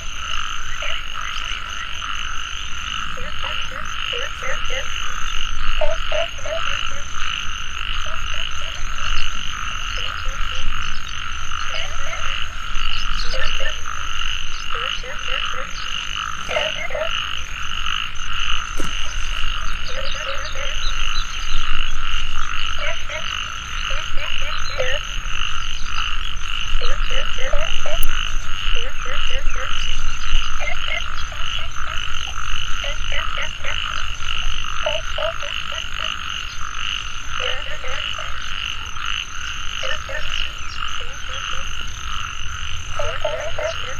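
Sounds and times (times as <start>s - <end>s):
evening chorus of frogs croaking: 0.0s - 43.9s.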